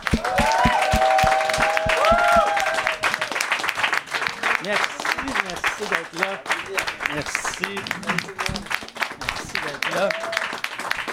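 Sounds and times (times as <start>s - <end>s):
audience applauding for guests introduced on stage: 0.0s - 11.1s
whistles and cheers: 0.1s - 3.4s.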